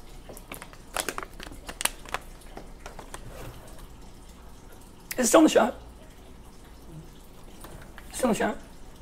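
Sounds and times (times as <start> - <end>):
thin plastic water bottle crinkling while being squeezed: 0.3 - 3.7
speech: 5.2 - 5.8, 8.2 - 8.6.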